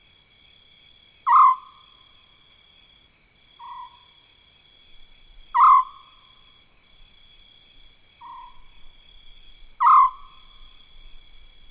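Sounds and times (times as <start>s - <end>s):
steady high insect drone: 0.0s - 11.6s
African scops owl giving a short purring trill in mopane woodland: 1.3s - 1.7s, 5.5s - 6.0s, 9.8s - 10.4s.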